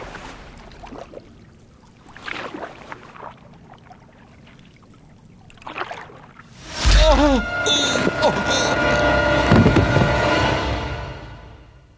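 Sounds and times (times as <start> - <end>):
oars dipping into water from a rowing boat at night: 0.0 - 6.6
rushing surge of water: 0.0 - 11.4.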